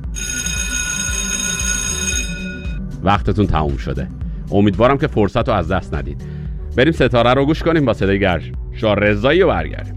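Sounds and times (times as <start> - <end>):
electric school bell ringing: 0.0 - 2.8
speech: 3.0 - 9.9.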